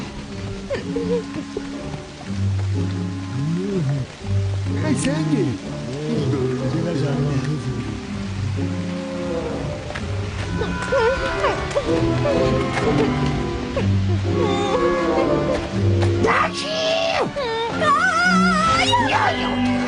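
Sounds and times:
steady rain: 0.0 - 19.8.

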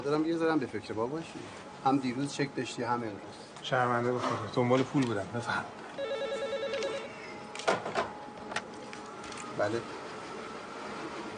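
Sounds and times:
speech: 0.0 - 5.8, 9.6 - 10.0
telephone ringing with a quiet electronic trill: 6.0 - 7.3.

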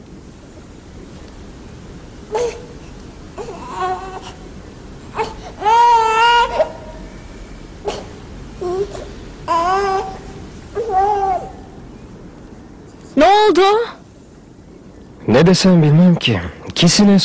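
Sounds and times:
baby crying: 2.3 - 2.8, 3.4 - 7.1, 7.8 - 11.8
speech: 15.4 - 17.2.

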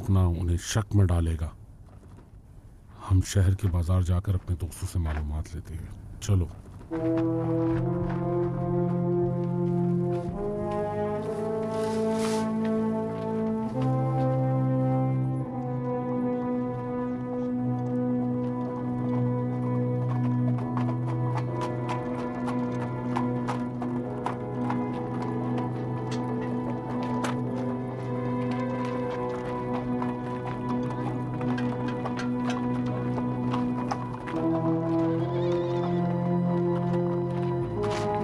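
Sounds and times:
speech: 0.1 - 1.6, 3.1 - 9.5
horse hooves clip-clopping: 1.7 - 2.5, 6.3 - 38.2
loud sustained musical drone: 6.9 - 38.2.

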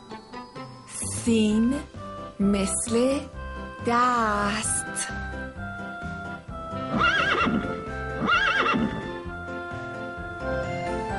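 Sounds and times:
speech: 1.2 - 5.7
horse neighing: 6.9 - 9.2.

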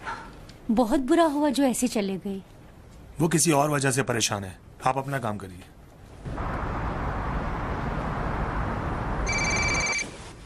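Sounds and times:
speech: 0.7 - 2.5, 3.2 - 5.8
loud steady rushing rumble: 6.1 - 9.2
telephone ringing in a shrill electronic burst: 9.2 - 10.2.

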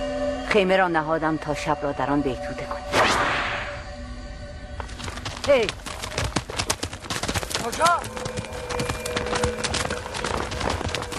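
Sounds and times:
speech: 0.5 - 3.0, 5.5 - 5.8, 7.7 - 8.5
horse hooves clip-clopping as a horse is led away: 4.7 - 11.1.

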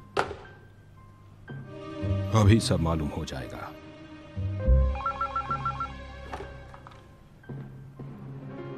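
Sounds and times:
speech: 2.3 - 3.8
telephone ringing with a rapid warbling trill during an outgoing call: 4.9 - 6.0.

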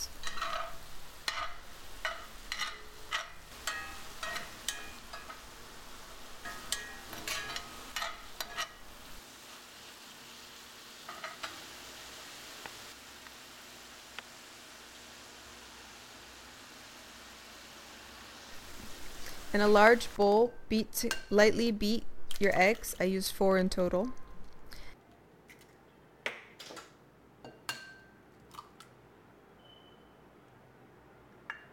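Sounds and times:
tomato sizzling in a pan: 0.0 - 22.0
speech: 19.5 - 24.2.

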